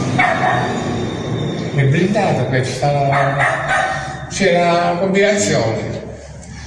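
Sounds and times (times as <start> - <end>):
dog barking behind a locked entrance door: 0.2 - 0.8, 3.1 - 4.3
speech: 1.9 - 3.6, 4.3 - 6.0.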